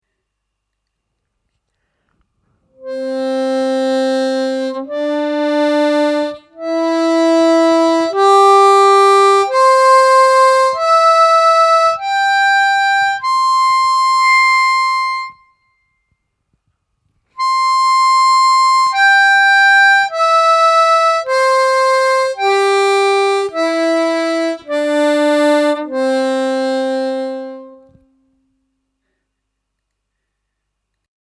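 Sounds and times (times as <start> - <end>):
harmonica playing all octaves up and down in sequence: 2.8 - 15.9, 17.4 - 28.2.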